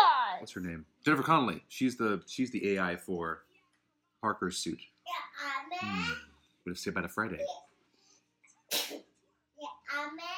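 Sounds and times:
speech: 0.4 - 3.5, 4.2 - 7.6
sneeze: 8.7 - 9.1.

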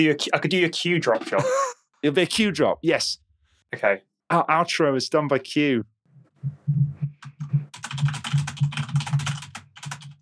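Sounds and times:
speech: 0.0 - 6.9
rapid dense typing on a computer keyboard: 7.7 - 10.2.

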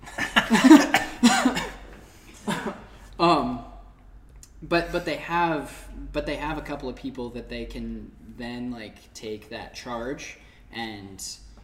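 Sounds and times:
laughter: 0.0 - 1.6
person coughing on a pita chip stuck in the throat: 0.4 - 2.9
speech: 4.7 - 11.6.

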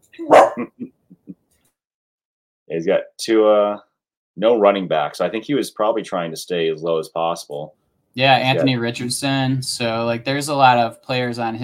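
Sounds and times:
dog barking: 0.2 - 0.7
speech: 0.2 - 1.0, 2.7 - 11.6.

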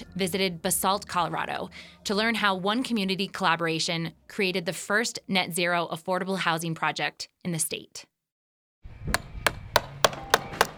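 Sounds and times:
speech: 0.2 - 8.1
hammer strikes on nails at a construction site: 9.2 - 10.7
workers sawing wood at a construction site: 9.2 - 10.7.

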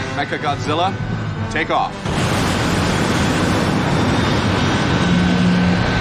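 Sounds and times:
speech: 0.2 - 2.1
big main engine starting up with jet-like roar: 2.1 - 5.9.

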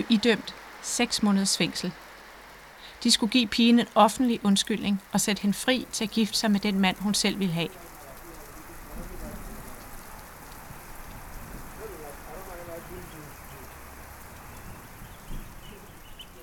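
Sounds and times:
steady rain pattering on a surface: 0.0 - 16.4
speech: 0.1 - 2.1, 3.0 - 7.9
faint voices murmuring indistinctly: 7.5 - 10.5, 11.6 - 13.9, 14.7 - 16.4.

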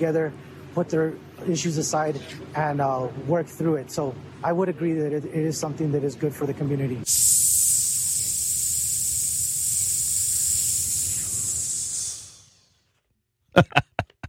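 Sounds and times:
speech: 0.0 - 7.5
air hissing out of a deflating balloon: 7.1 - 12.8
laughter: 13.6 - 14.2.

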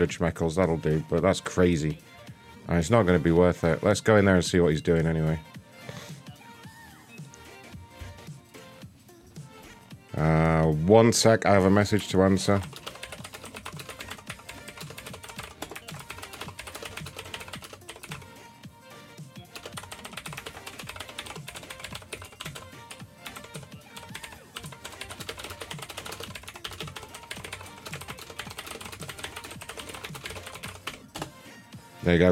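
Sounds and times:
speech: 0.0 - 2.1, 2.7 - 6.0, 10.2 - 12.8
typing on a computer keyboard: 12.5 - 18.3, 19.5 - 31.3.

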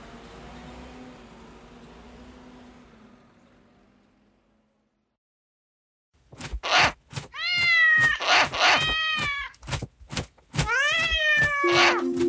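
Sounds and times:
black cat spitting and hissing: 6.6 - 9.5
black cat yowling as if in a fight: 6.7 - 9.6, 10.6 - 12.0.

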